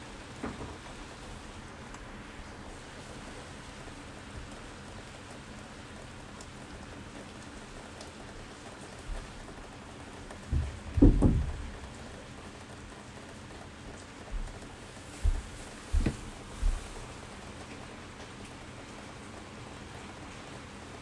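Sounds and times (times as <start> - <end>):
heavy rain falling in Tokyo: 0.0 - 21.0
heavy raindrops thudding and splashing: 10.5 - 11.8.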